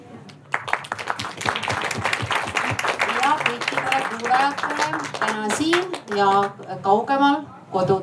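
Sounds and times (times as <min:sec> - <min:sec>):
crowd applauding discussion participants at a festival in Estonia: 0:00.2 - 0:06.6
speech: 0:04.2 - 0:08.0.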